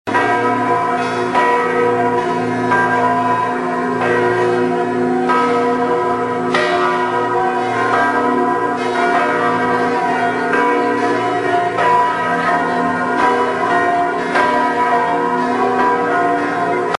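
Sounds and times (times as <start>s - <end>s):
church bells: 0.1s - 16.9s.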